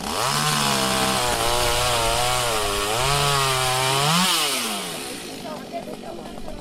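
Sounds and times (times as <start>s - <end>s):
chainsaws cutting branches of an old pear tree: 0.0s - 6.5s.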